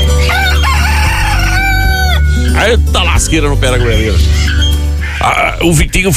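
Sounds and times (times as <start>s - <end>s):
rooster crowing: 0.2s - 2.4s
speech: 2.6s - 4.4s, 5.2s - 6.1s.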